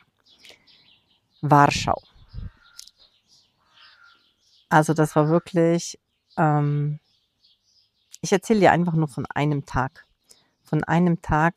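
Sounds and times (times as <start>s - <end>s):
bird calls and chirps on a sunny outdoor terrace: 0.0s - 11.5s
speech: 1.4s - 2.1s, 4.7s - 7.0s, 8.2s - 10.1s, 10.7s - 11.5s
harsh crow-like caw: 2.5s - 2.9s, 3.6s - 4.3s.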